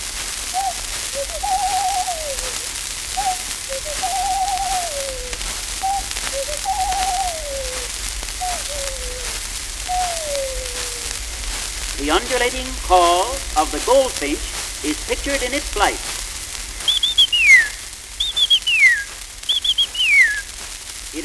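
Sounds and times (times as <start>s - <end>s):
steady hiss: 0.0s - 21.2s
ring dove cooing: 0.4s - 21.2s
speech: 12.4s - 16.2s.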